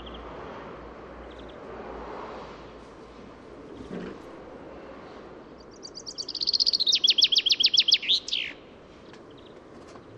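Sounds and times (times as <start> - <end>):
common chaffinch Fringilla coelebs singing: 5.6 - 10.1.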